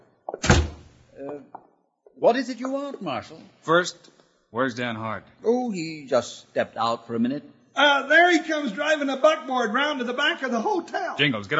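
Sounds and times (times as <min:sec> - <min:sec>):
door closing thunk: 0:00.3 - 0:01.0
speech: 0:01.2 - 0:11.5.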